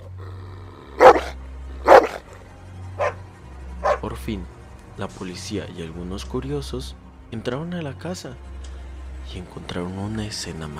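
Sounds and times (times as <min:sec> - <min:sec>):
dogs barking desperately: 0:00.8 - 0:02.4, 0:03.0 - 0:04.1
speech: 0:04.0 - 0:08.5, 0:09.3 - 0:10.7.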